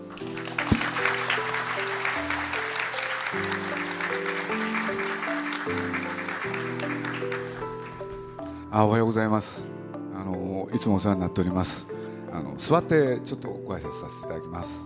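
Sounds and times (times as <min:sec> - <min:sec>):
audience applause welcoming guests: 0:00.0 - 0:08.1
upbeat music with stepping sustained notes: 0:00.0 - 0:14.8
speech: 0:08.8 - 0:09.7, 0:10.7 - 0:11.9, 0:12.5 - 0:14.8.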